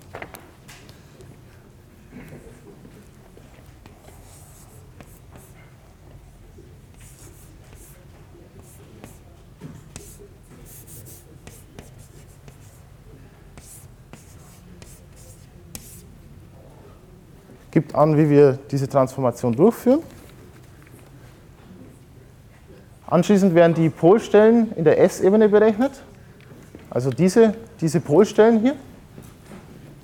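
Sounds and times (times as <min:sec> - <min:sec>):
faint handwriting of an equation: 0:02.2 - 0:16.2
speech: 0:17.8 - 0:20.1, 0:23.1 - 0:26.1, 0:26.9 - 0:28.9.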